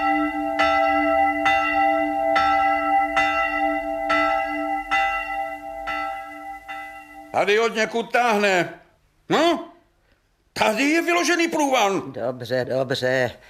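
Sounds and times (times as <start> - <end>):
church bell tolling for mass: 0.0 - 8.0
speech: 7.4 - 9.7, 10.6 - 13.4.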